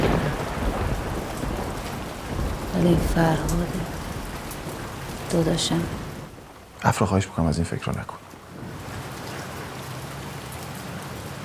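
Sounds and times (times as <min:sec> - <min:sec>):
steady rain pattering on surfaces: 0:00.0 - 0:11.4
speech: 0:02.8 - 0:04.0, 0:05.3 - 0:06.0, 0:06.8 - 0:08.2.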